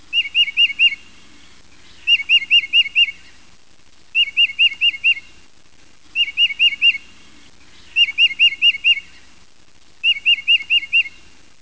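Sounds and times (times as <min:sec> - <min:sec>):
Tufted titmouse giving whistled phrases: 0:02.0 - 0:03.2, 0:04.2 - 0:05.3, 0:06.2 - 0:07.1, 0:07.9 - 0:09.2, 0:10.0 - 0:11.2.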